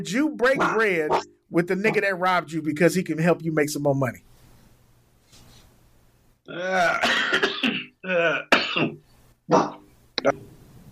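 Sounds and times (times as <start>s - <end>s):
speech: 0.0s - 4.3s, 6.5s - 10.4s
harsh raspy coughing: 6.5s - 9.8s
throat-clearing: 6.5s - 10.4s.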